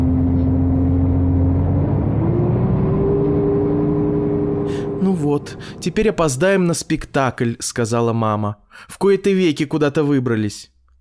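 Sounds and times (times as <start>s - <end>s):
heavy bus engine pulling away from a stop: 0.0s - 6.9s
speech: 5.8s - 10.7s.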